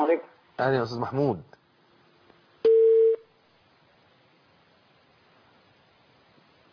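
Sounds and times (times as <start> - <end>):
faint hiss: 0.0 - 6.7
speech: 0.1 - 1.6
telephone line busy tone beep after a call drops: 2.7 - 3.2.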